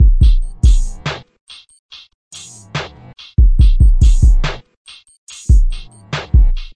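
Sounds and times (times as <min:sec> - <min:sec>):
dark kick drum in a drum loop: 0:00.0 - 0:01.0, 0:03.4 - 0:04.6, 0:05.5 - 0:06.7
hi-hat in a drum loop: 0:00.0 - 0:06.7.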